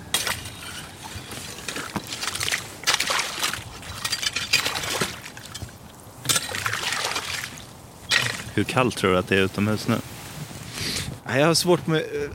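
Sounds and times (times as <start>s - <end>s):
wet crunching and splashing of ice pieces: 0.0s - 8.7s
slushy icy water sloshing in a hole cut in the ice: 0.0s - 8.8s
speech: 8.6s - 10.1s, 11.3s - 12.3s.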